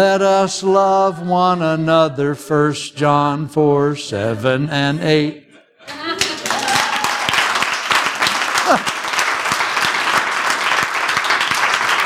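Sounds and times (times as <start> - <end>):
speech: 0.0 - 6.2
raised voices in an audience: 4.1 - 7.6
person whooping: 5.9 - 7.6, 8.6 - 9.0
loud sustained applause from a large audience: 5.9 - 12.0.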